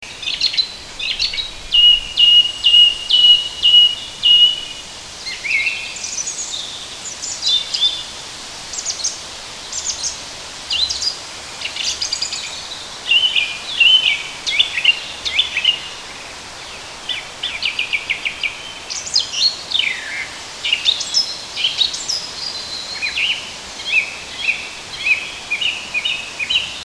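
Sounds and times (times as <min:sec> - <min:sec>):
Turdus philomelos song thrush in a hedge: 0:00.0 - 0:26.8.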